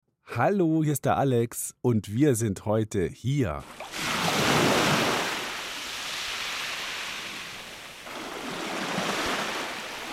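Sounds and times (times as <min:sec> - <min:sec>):
speech: 0:00.4 - 0:04.0
ocean surf rolling in: 0:03.6 - 0:10.1.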